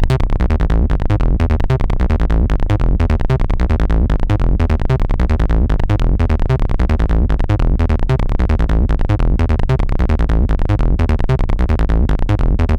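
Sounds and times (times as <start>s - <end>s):
trance bassline: 0.0s - 12.7s.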